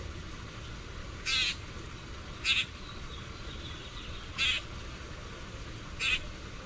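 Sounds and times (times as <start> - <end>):
quiet low-frequency background noise: 0.0 - 6.6
common grackle coarse chack calls: 1.2 - 1.6, 2.4 - 2.8, 4.4 - 4.7, 6.0 - 6.3.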